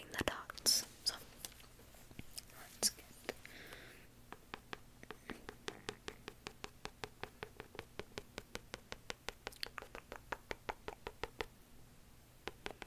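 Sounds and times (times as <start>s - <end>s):
faint low hum: 0.0s - 12.8s
crisp tapping on a book: 4.4s - 9.5s, 12.4s - 12.8s.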